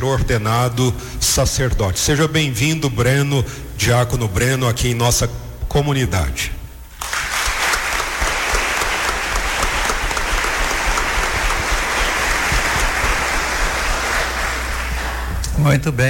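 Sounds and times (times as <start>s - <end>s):
speech: 0.0s - 6.6s, 15.6s - 16.0s
indoor audience applause: 7.0s - 15.4s.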